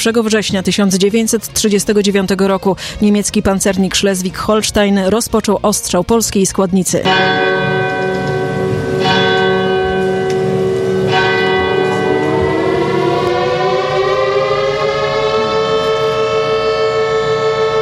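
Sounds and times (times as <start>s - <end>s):
speech: 0.0s - 7.7s
bell clanging: 7.0s - 13.5s
commemorative siren wailing: 11.6s - 17.7s.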